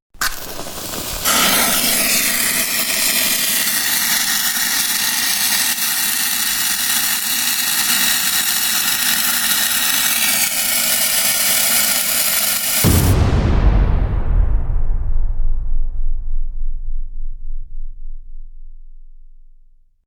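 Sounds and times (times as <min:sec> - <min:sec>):
huge explosion: 0:00.2 - 0:04.2, 0:12.8 - 0:19.6
burning fuse wire fizzing: 0:00.2 - 0:12.8
match striking: 0:00.2 - 0:13.1.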